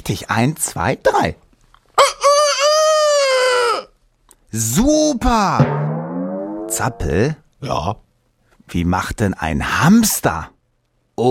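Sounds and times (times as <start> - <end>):
speech: 0.0 - 1.4, 4.5 - 6.0, 6.7 - 8.0, 8.7 - 10.5
person imitating a rooster's crow: 2.0 - 3.9.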